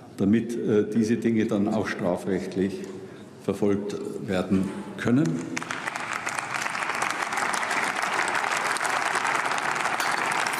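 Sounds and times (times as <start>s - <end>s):
speech: 0.2s - 5.7s
audience applause during a political speech: 5.6s - 10.5s.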